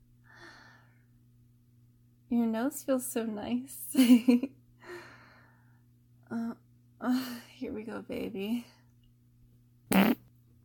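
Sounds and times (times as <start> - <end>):
faint steady hum: 0.0 - 10.6
speech: 2.3 - 4.6, 6.3 - 8.8
short raspy fart: 9.9 - 10.3.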